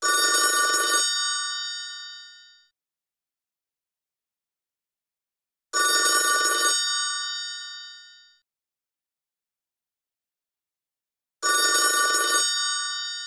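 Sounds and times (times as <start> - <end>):
phone of an ECG machine: 0.0 - 2.7, 5.8 - 8.4, 11.4 - 13.2.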